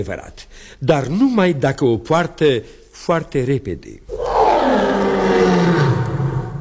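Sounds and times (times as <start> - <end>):
speech: 0.0 - 5.7
lion roaring: 4.1 - 6.5.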